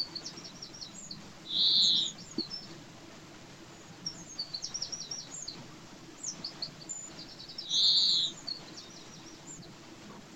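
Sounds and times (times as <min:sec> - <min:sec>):
European greenfinch Chloris chloris twittering in quick high trills: 0:00.0 - 0:02.7, 0:04.0 - 0:05.6, 0:06.2 - 0:09.7.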